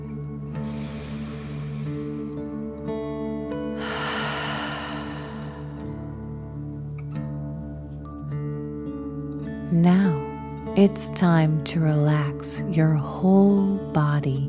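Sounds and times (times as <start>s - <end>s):
gentle sustained music: 0.0s - 14.4s
deep breathing during a slow relaxation breathing exercise: 0.6s - 2.7s, 3.6s - 6.8s
speech: 9.8s - 10.1s, 10.8s - 14.4s.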